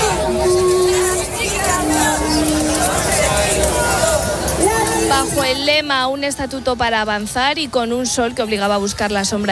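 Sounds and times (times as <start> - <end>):
sustained vuvuzela tones: 0.0 - 5.6
large crowd of protesting health transport workers shouting and cheering outside a hospital: 0.0 - 5.9
speech: 5.8 - 9.4.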